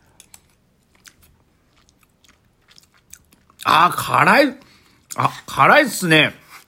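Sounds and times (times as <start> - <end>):
wet chewing and slurping of thick spicy curry roux: 0.1 - 3.6
speech: 3.6 - 4.6, 5.2 - 6.4.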